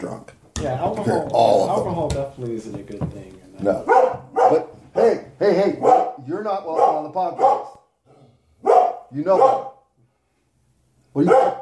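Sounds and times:
speech: 0:00.2 - 0:04.6, 0:09.2 - 0:09.6
dog bark: 0:03.8 - 0:04.8, 0:05.8 - 0:07.9, 0:08.6 - 0:09.9, 0:11.2 - 0:11.6.

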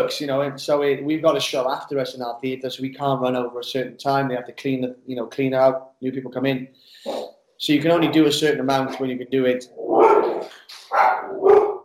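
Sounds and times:
speech: 0:00.0 - 0:11.6
pet dog yapping: 0:10.0 - 0:11.8.

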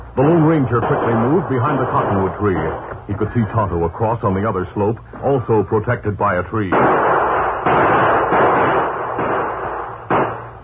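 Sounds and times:
continuous rumbling wash: 0:00.0 - 0:10.6
gunshots in a shootout among rocks, boulders and cottonwood trees: 0:00.2 - 0:03.5, 0:06.6 - 0:10.6
speech: 0:00.2 - 0:07.8.

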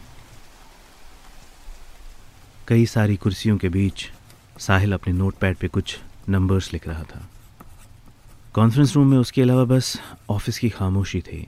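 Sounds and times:
rain pattering on a long glass window on a 25th floor: 0:00.0 - 0:11.4
speech: 0:02.7 - 0:07.3, 0:08.5 - 0:11.4.

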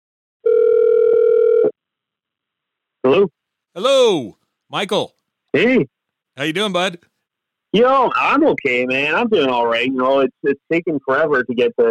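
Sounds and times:
electronic telephone ring tone on an outgoing call: 0:00.4 - 0:01.7
speech: 0:03.0 - 0:07.1, 0:07.7 - 0:11.9.

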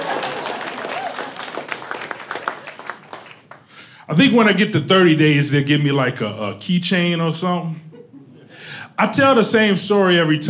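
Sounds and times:
small crowd clapping: 0:00.0 - 0:03.8
speech: 0:04.1 - 0:07.9, 0:09.0 - 0:10.4.

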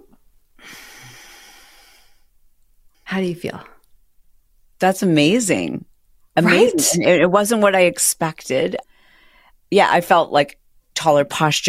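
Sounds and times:
deep breath: 0:00.6 - 0:02.3, 0:08.9 - 0:09.6
speech: 0:03.2 - 0:03.7, 0:04.8 - 0:08.9, 0:09.7 - 0:11.6.

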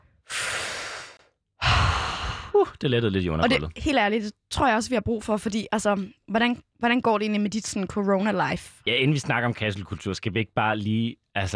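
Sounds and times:
people taking a long deep inhale together: 0:00.0 - 0:02.6
people exhaling heavily: 0:00.2 - 0:02.6
speech: 0:02.6 - 0:11.5.

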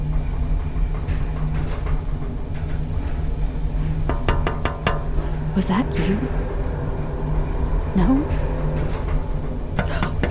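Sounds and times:
elevator mechanical hum: 0:00.0 - 0:10.3
hollow knocks on the walls of a moving elevator: 0:04.0 - 0:05.1
speech: 0:05.6 - 0:06.5, 0:08.0 - 0:08.5.

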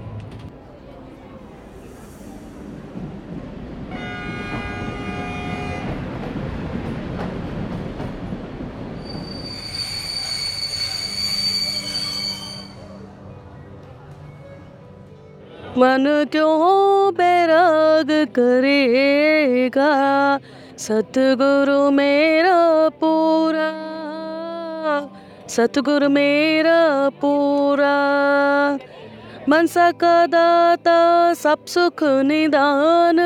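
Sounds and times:
passenger train rolling into Amritsar India: 0:00.0 - 0:16.0
high metallic train wheel squeals: 0:09.0 - 0:13.0
speech: 0:15.8 - 0:23.8, 0:24.9 - 0:28.9, 0:29.5 - 0:33.2.

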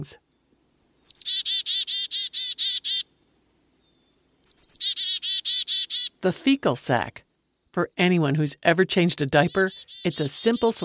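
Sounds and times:
speech: 0:00.0 - 0:00.3, 0:06.2 - 0:10.8
chickadee calls: 0:01.0 - 0:03.1, 0:04.4 - 0:06.2, 0:09.0 - 0:10.8.

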